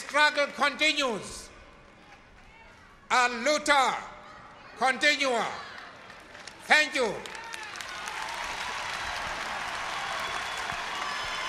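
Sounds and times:
speech: 0.1s - 1.4s, 3.1s - 4.1s, 4.8s - 5.7s, 6.7s - 7.4s
large crowd applauding after a speech: 5.7s - 11.4s.

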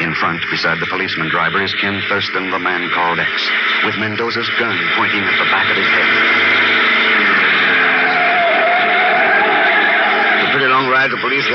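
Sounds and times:
speech: 0.3s - 6.8s, 10.6s - 11.5s
engine of a black sedan climbing a curving mountain road in Puerto Rico: 2.9s - 11.5s.

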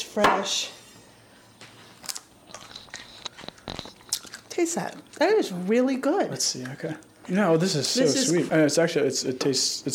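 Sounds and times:
speech: 0.2s - 0.8s, 4.6s - 9.9s
crisp bite and chews of a raw ivory-colored vegetable wedge: 2.0s - 4.5s.

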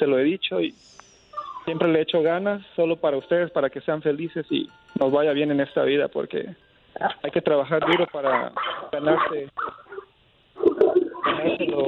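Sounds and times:
speech: 0.0s - 1.0s, 1.6s - 9.8s, 10.6s - 11.8s
small dog barking in high yips: 7.8s - 11.5s.

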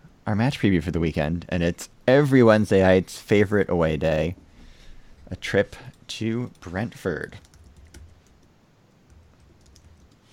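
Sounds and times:
soft hum: 0.0s - 10.3s
speech: 0.3s - 4.4s, 5.3s - 7.5s
computer keyboard typing: 7.3s - 8.5s, 9.1s - 10.3s.

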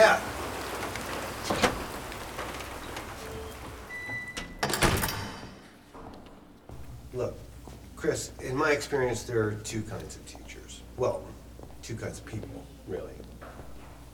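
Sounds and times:
steady rain hissing: 0.0s - 4.0s, 6.7s - 13.2s
louder clattering knocks: 0.2s - 7.1s
speech: 8.0s - 10.4s, 11.0s - 11.3s, 11.9s - 13.3s.

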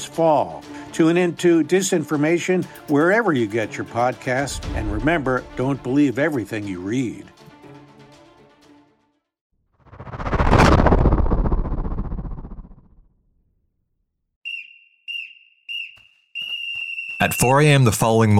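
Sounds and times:
speech: 0.2s - 7.3s, 17.2s - 18.3s
loud rushing swell of noise: 9.9s - 12.8s
short piercing whistle blasts: 14.4s - 17.8s.

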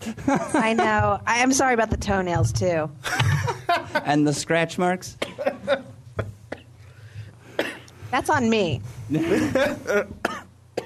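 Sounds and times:
speech: 0.1s - 5.8s, 8.1s - 10.2s
person coughing while choking on a cough drop: 5.2s - 5.6s, 6.2s - 6.8s, 7.5s - 7.9s, 9.1s - 10.8s.

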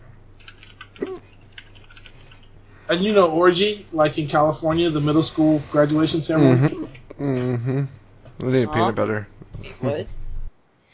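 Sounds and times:
steady low hum: 0.0s - 10.9s
typing on a computer keyboard: 0.4s - 2.5s
speech: 2.9s - 10.2s.

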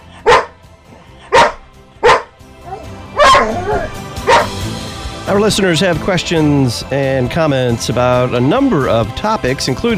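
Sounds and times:
dog barking: 0.1s - 0.6s, 1.2s - 4.6s
speech: 5.3s - 9.9s.

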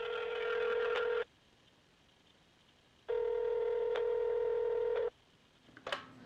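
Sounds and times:
telephone line ringing tone: 0.0s - 1.2s, 3.1s - 5.1s.

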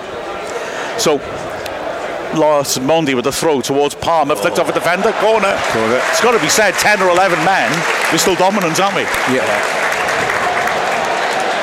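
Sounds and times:
speech: 1.0s - 1.5s, 2.3s - 9.8s
large stadium crowd at a football match cheering and applauding: 4.4s - 11.6s.

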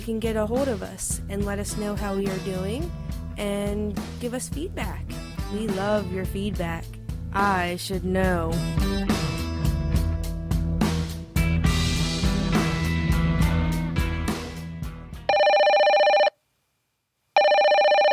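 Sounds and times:
speech: 0.0s - 8.8s
music: 0.0s - 15.3s
telephone ringing with an incoming call: 15.3s - 16.4s, 17.4s - 18.1s.

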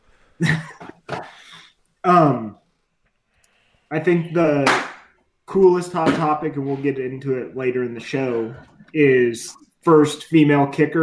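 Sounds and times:
speech: 0.4s - 0.7s, 3.9s - 4.9s, 5.5s - 11.0s
person coughing with hacking and throaty coughs: 0.4s - 1.7s.

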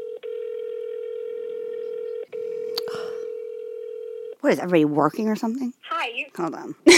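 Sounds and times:
buzzing phone ringing tone held up to a microphone: 0.0s - 4.4s
speech: 4.4s - 6.9s.

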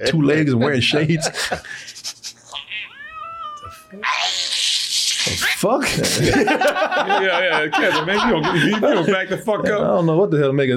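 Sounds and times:
speech: 0.0s - 2.0s, 5.2s - 10.7s
laughter: 0.5s - 2.6s, 5.6s - 10.2s
cat giving a loud harsh hiss: 2.0s - 5.7s
cat giving a long wavering meow: 2.6s - 5.4s.

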